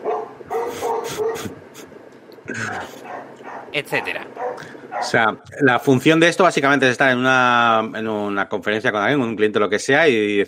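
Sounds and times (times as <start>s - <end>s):
several dogs barking and yipping: 0.0s - 1.8s, 2.8s - 5.2s
steady noise: 0.0s - 10.4s
speech: 3.7s - 10.4s.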